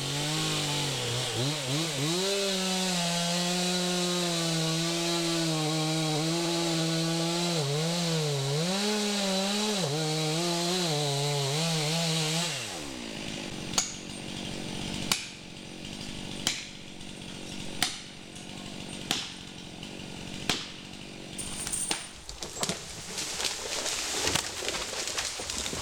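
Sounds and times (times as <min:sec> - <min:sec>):
chainsaw cutting wood: 0:00.0 - 0:25.7
sharp cracks and knocks: 0:13.7 - 0:14.4, 0:15.0 - 0:25.7.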